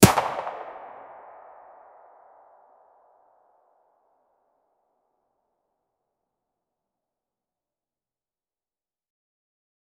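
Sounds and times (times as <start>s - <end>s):
MP5 9mm single gunshot: 0.0s - 1.5s.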